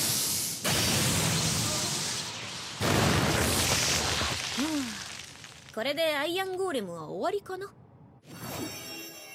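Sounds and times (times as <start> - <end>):
heavy crackling impacts of an electric bear punch attack: 0.7 - 6.0
speech: 5.8 - 8.4.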